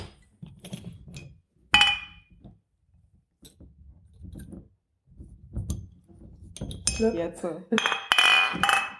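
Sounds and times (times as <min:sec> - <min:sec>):
glasses clinking in a toast: 0:01.8 - 0:02.3, 0:07.8 - 0:08.9
speech: 0:07.0 - 0:07.9.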